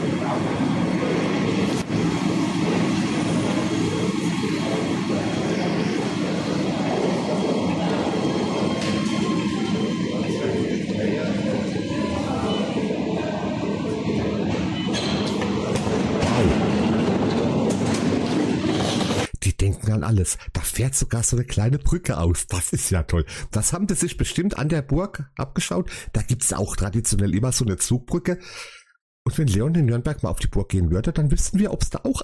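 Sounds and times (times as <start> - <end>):
driverless underground metro train running in Nuremberg: 0.0 - 19.3
speech: 20.1 - 32.2.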